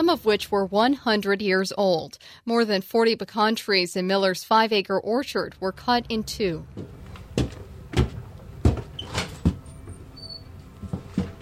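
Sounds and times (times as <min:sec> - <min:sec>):
speech: 0:00.0 - 0:07.0
knocks and thumps: 0:06.7 - 0:10.0, 0:10.7 - 0:11.4
hinges of a damaged house side door squeaking: 0:08.8 - 0:11.4.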